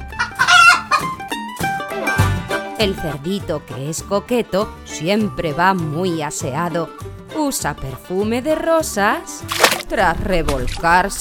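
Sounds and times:
hen clucking: 0:00.2 - 0:01.2
speech: 0:02.8 - 0:11.1.

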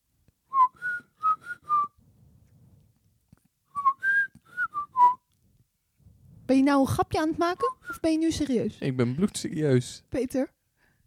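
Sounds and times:
person whistling a short melody: 0:00.5 - 0:02.0, 0:03.8 - 0:05.2
speech: 0:06.5 - 0:10.6.

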